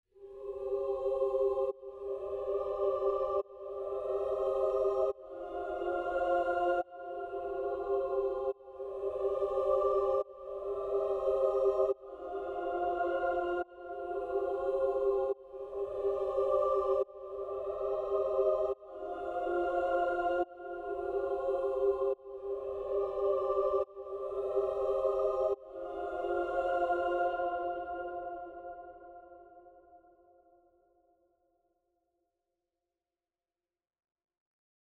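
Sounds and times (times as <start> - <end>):
choral pad in C minor: 0.2 - 30.1.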